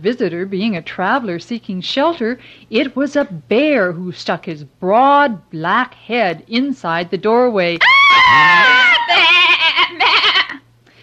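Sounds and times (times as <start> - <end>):
speech: 0.0 - 10.0
lamb bleating loudly: 8.3 - 10.6.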